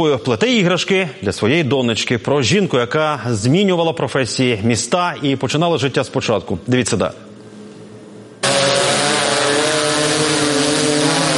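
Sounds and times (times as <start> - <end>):
speech: 0.0 - 7.3
border-surveillance drone motors buzzing as it climbs: 8.4 - 11.3.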